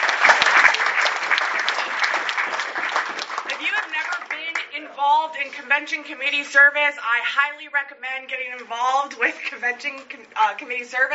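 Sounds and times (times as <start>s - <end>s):
audience applause: 0.0s - 4.6s
speech: 5.0s - 11.1s.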